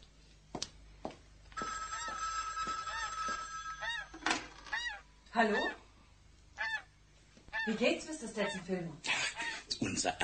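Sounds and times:
telephone on a long line from a ranch ringing with faint electric bell tone: 1.6 - 4.9
speech: 5.4 - 5.8, 7.7 - 9.1, 9.8 - 10.2.

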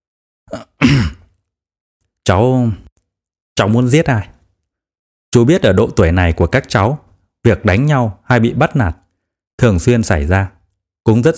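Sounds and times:
man clearing throat: 0.5 - 1.3
speech: 2.3 - 2.8, 3.6 - 4.3, 5.3 - 9.0, 9.6 - 11.3.

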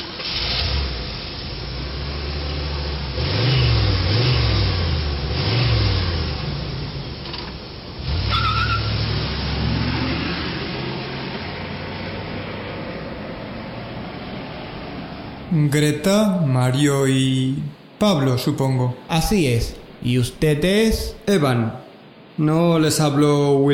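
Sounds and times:
car driving away with engine revving: 0.0 - 15.5
noisy background: 12.9 - 23.7
speech: 15.6 - 21.8, 22.4 - 23.7.

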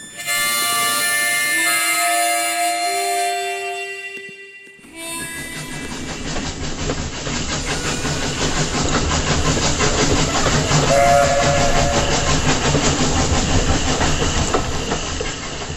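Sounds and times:
steam train whistle at an old Wild West station: 0.0 - 6.3, 7.6 - 8.9, 10.2 - 13.2
steam train hiss: 4.9 - 15.7
rolling clatter of steam train wagons: 5.3 - 15.7.

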